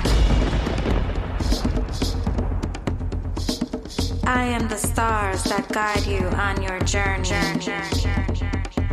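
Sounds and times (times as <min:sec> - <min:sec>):
sharp cracks and crackling bursts of thunder: 0:00.0 - 0:05.5
heavy low rumble of thunder in the night sky: 0:00.0 - 0:08.8
speech: 0:04.3 - 0:08.3.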